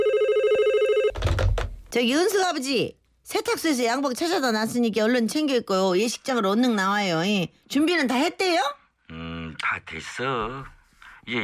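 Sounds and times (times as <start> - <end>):
steady electronic phone ringtone: 0.0 - 1.2
speech: 1.9 - 11.4.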